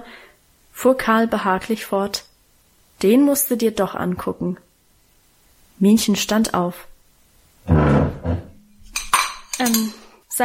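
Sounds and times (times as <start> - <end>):
speech: 0.8 - 2.3, 3.0 - 4.6, 5.8 - 6.9, 9.6 - 10.4
dinner plates and cutlery clinking at a table: 8.7 - 10.1.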